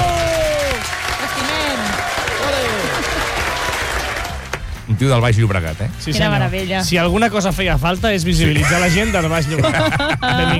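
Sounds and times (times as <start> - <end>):
voices calling out and cheering: 0.0 - 4.6
live audience applause welcoming a guest: 0.0 - 4.8
laughter: 2.4 - 3.7, 8.4 - 10.5
speech: 5.0 - 10.5.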